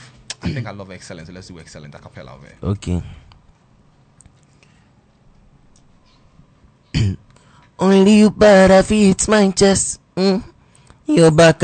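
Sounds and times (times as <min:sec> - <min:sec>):
person clearing throat in a studio: 0:00.3 - 0:00.7, 0:06.9 - 0:07.3
speech: 0:00.4 - 0:03.3, 0:07.8 - 0:10.5, 0:11.1 - 0:11.6.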